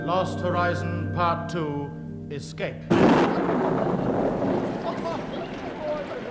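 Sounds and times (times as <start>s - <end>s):
speech: 0.2s - 5.0s
tropical storm wind roaring: 2.9s - 6.2s.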